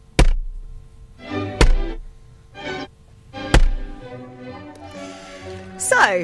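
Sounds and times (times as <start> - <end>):
pak choi banged on a desk: 1.6 - 1.9, 3.5 - 3.8
speech: 6.0 - 6.2.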